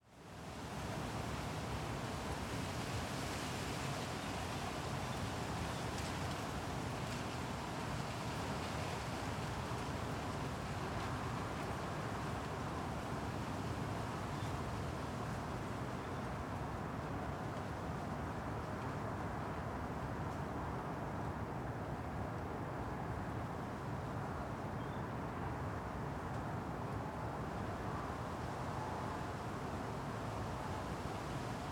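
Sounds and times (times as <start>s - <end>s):
wind at night in Arcueil France: 0.0s - 31.7s.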